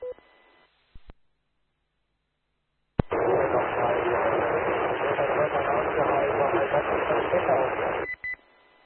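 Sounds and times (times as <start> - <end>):
loud hissing amateur radio static: 3.0 - 8.1.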